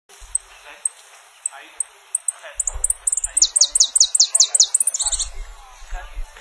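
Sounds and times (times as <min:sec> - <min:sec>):
Sicalis flaveola calling: 0:00.2 - 0:05.3.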